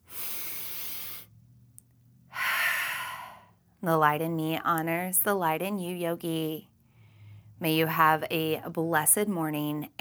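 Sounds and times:
open-mouth exhale during a yoga breathing exercise: 0.0s - 1.3s, 2.3s - 3.5s
speech: 3.8s - 6.7s, 7.6s - 9.9s.

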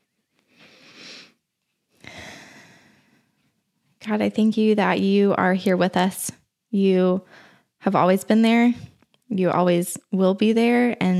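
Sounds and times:
group of people taking a deep breath together before a prayer: 2.0s - 3.4s, 7.2s - 7.8s
speech: 4.0s - 11.1s.

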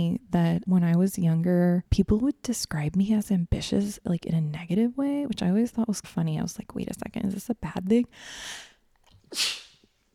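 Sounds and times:
speech: 0.0s - 8.7s, 9.3s - 9.6s
person sneezing: 9.3s - 9.9s.

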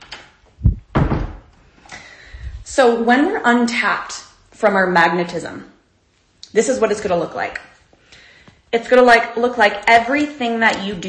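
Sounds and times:
door swinging shut with a solid thump: 0.6s - 1.6s
speech: 2.8s - 5.7s, 6.5s - 7.7s, 8.7s - 11.0s.

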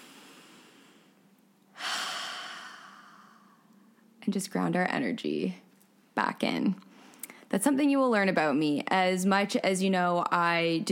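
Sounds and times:
deep breath: 0.0s - 3.9s
speech: 4.2s - 5.6s, 6.2s - 6.9s, 7.5s - 10.9s.

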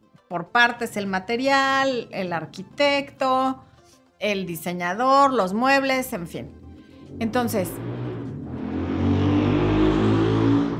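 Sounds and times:
speech: 0.3s - 7.9s
motorcycle passing at full speed: 6.6s - 10.7s.

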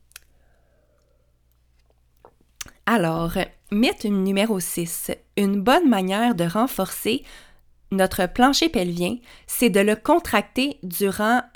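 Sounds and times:
faint wet mouth clicks: 1.8s - 2.8s
speech: 2.9s - 11.5s.

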